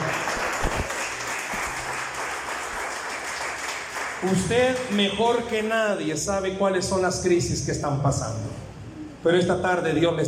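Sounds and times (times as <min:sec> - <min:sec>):
audience applauding in a reverberant room: 0:00.0 - 0:05.8
speech: 0:04.2 - 0:08.5, 0:09.2 - 0:10.2.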